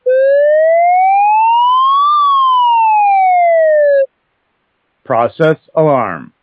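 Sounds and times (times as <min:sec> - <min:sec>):
process alarm sounding: 0:00.1 - 0:04.1.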